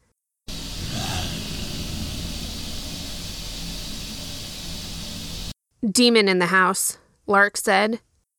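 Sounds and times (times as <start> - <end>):
static hiss from an EVP recording played back on a recorder: 0.5 - 5.6
low rough growl-like rumble: 0.6 - 5.2
speech: 5.8 - 8.1.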